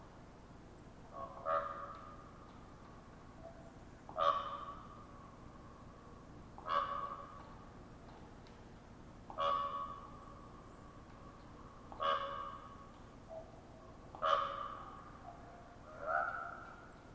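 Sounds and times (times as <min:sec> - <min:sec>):
raven popping calls with hollow ringing tone: 0:01.1 - 0:05.3, 0:06.5 - 0:07.6, 0:09.2 - 0:17.1.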